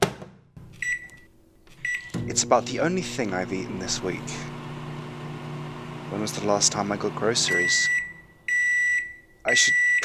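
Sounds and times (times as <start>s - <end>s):
microwave oven humming while heating a cup of water: 0.6s - 9.4s
microwave oven door shutting: 1.8s - 8.2s
speech: 2.3s - 4.5s, 6.1s - 8.0s, 9.5s - 9.8s
microwave oven electronic beep: 7.4s - 10.0s.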